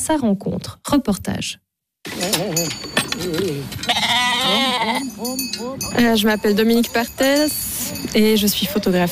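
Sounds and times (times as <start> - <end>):
speech: 0.0 - 2.8, 5.2 - 9.1
several sheep bleating in a pasture: 3.8 - 5.2.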